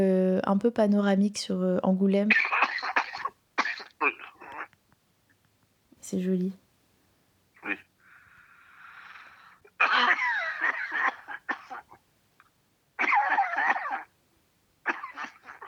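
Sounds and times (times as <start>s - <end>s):
speech: 0.0s - 2.6s, 6.1s - 6.6s
harsh hacking coughing fit: 2.3s - 4.8s, 7.6s - 7.9s, 9.7s - 12.0s, 13.0s - 14.1s, 14.8s - 15.6s
wheezy inhale: 8.0s - 9.8s.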